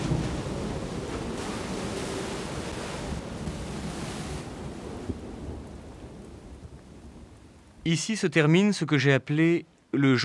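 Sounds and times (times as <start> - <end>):
sea waves crashing against rocks: 0.0 - 5.8
gusty wind: 0.0 - 7.9
speech: 7.9 - 10.2.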